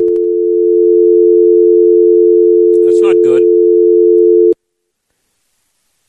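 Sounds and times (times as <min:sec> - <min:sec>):
telephone dial tone after a dropped call: 0:00.0 - 0:04.6
man making a short remark: 0:02.8 - 0:03.5.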